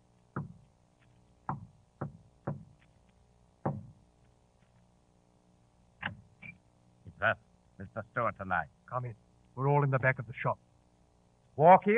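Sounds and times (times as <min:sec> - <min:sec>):
quiet hum: 0:00.0 - 0:11.9
knuckles knocking on the wooden door of a tea room: 0:00.4 - 0:00.6, 0:01.5 - 0:02.8, 0:03.6 - 0:04.0
speech: 0:07.2 - 0:10.7, 0:11.6 - 0:11.9.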